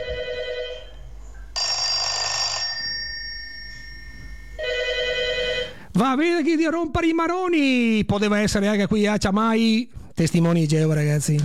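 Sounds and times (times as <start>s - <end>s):
1970s rotary telephone bell ringing: 0.0s - 1.0s, 1.6s - 5.9s
speech: 6.0s - 11.4s.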